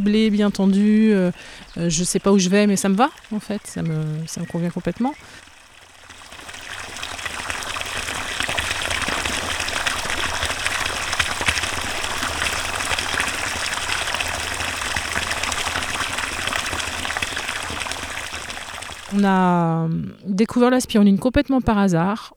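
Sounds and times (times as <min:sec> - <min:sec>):
speech: 0:00.0 - 0:05.5, 0:19.2 - 0:22.3
liquid culture medium draining back into a spirulina basin: 0:00.0 - 0:20.6.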